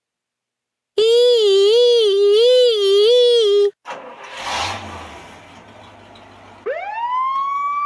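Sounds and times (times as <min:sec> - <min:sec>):
fire truck engine rumbling: 0:01.0 - 0:07.8
warbling fire truck siren wailing: 0:06.6 - 0:07.8.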